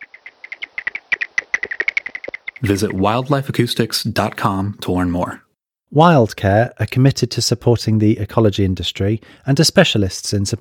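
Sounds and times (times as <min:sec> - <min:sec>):
barbastelle bat calls recorded at a great barn: 0:00.0 - 0:03.2
speech: 0:02.6 - 0:10.5.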